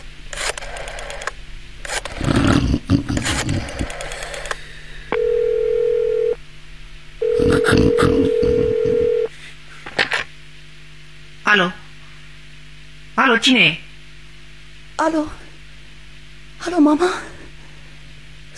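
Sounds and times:
clicking and rustling: 0.0s - 2.5s, 3.1s - 4.6s
telephone dial tone before a call: 3.9s - 6.4s, 7.2s - 9.3s
speech: 13.4s - 13.8s, 15.1s - 15.4s, 16.7s - 17.3s.

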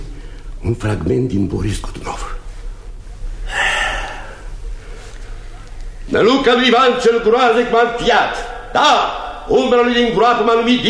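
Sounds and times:
faint low hum: 0.0s - 10.8s
speech: 0.6s - 2.3s, 6.1s - 10.8s
deep breath before reciting: 3.4s - 5.6s.

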